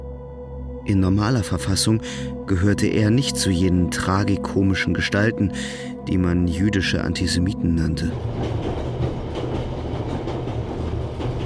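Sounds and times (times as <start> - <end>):
speech: 0.8 - 8.9
train rolling along the rails toward Berlin: 6.4 - 11.4.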